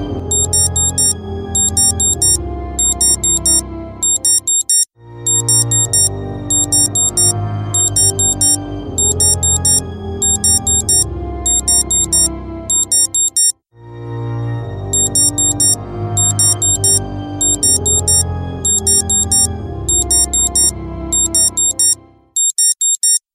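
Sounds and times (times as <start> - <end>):
morning buzzer alarm: 0.2 - 13.5, 14.9 - 23.2.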